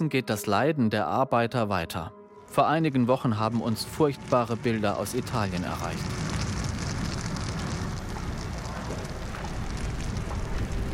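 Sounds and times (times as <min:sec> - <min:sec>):
speech: 0:00.0 - 0:06.2
large fire blazing through tent camp: 0:03.2 - 0:10.9.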